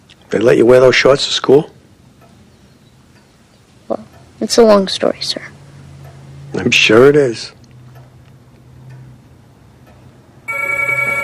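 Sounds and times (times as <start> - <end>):
low room hum: 0.0 - 11.2
speech: 0.3 - 1.8, 4.5 - 5.6, 6.6 - 7.6
telephone bell ringing: 10.5 - 11.2.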